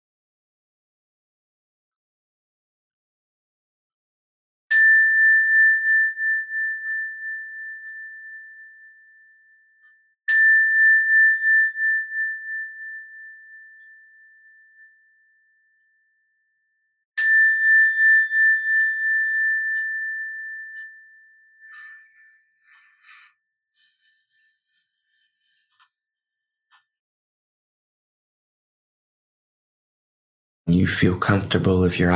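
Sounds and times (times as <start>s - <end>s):
bell struck during a breathing exercise: 4.7s - 8.9s, 10.3s - 14.5s, 17.2s - 23.2s
speech: 30.7s - 32.1s.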